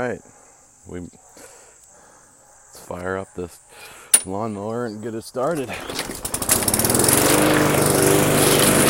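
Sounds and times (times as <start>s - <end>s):
speech: 0.1s - 1.2s, 2.9s - 6.1s
lawn mower engine running while mowing a lawn: 5.6s - 8.8s.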